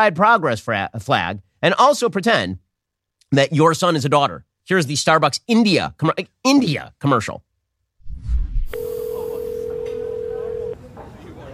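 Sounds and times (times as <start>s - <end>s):
speech: 0.0s - 2.6s, 3.3s - 7.5s
brief low rumble: 8.0s - 8.8s
phone call ringing tone beep: 8.7s - 10.8s.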